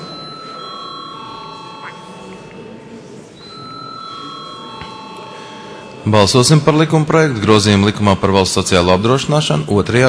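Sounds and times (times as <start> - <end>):
electric chamber bell ringing before a parliamentary vote: 0.0 - 7.1
speech: 6.0 - 10.0.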